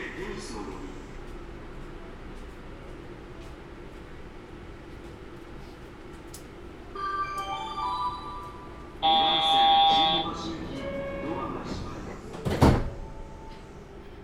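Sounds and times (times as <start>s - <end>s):
train door warning chime with electronic tones: 7.0s - 13.8s
train doors opening with a sharp sliding clunk: 9.0s - 13.8s.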